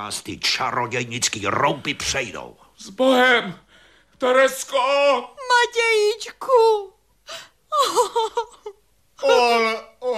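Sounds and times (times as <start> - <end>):
speech: 0.0 - 3.6, 4.2 - 10.1
woman sobbing and wailing: 7.3 - 10.1.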